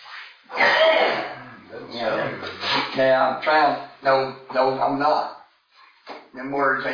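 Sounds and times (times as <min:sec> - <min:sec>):
person coughing harshly: 0:00.5 - 0:01.5
person clearing throat: 0:00.5 - 0:02.9
speech: 0:02.0 - 0:05.4, 0:06.3 - 0:06.9.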